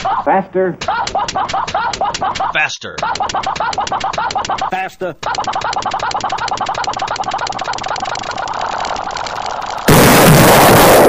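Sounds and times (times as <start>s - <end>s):
laughter: 0.0s - 8.8s
speech: 0.2s - 1.6s, 2.5s - 7.8s
explosion: 9.9s - 11.0s.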